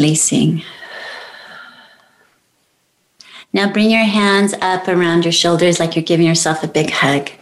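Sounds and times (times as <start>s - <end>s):
speech: 0.0s - 0.8s, 3.5s - 7.3s
deep breath in and slowly exhaled during a guided relaxation exercise: 0.6s - 2.4s.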